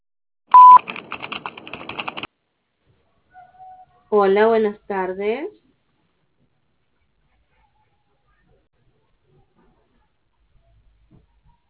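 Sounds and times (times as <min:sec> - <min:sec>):
telephone voicemail electronic beep: 0:00.5 - 0:00.8
rapid keypad-like clicking tones: 0:00.5 - 0:02.3
speech: 0:04.2 - 0:05.6.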